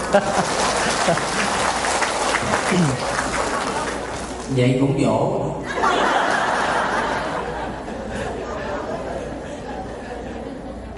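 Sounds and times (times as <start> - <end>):
laughter: 0.0 - 4.0, 5.6 - 10.9
crowd applauding: 0.0 - 4.5
speech: 0.1 - 1.4, 2.4 - 3.2, 4.5 - 6.2
murmur of voices: 0.8 - 4.6, 7.3 - 10.9.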